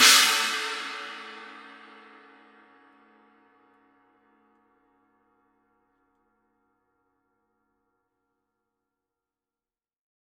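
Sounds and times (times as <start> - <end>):
Paiste Rude 18 wild china cymbal edge: 0.0 - 2.7.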